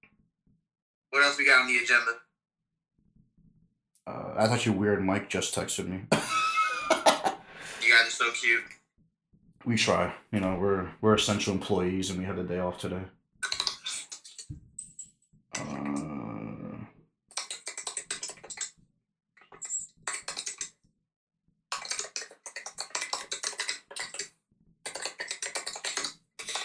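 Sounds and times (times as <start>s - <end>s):
speech: 1.1s - 2.2s, 4.4s - 7.0s, 7.9s - 8.8s, 9.6s - 13.2s
laughter: 6.1s - 7.8s
typing on a computer keyboard: 13.4s - 15.0s, 17.3s - 18.8s, 19.4s - 20.8s, 21.7s - 24.3s, 24.9s - 26.6s.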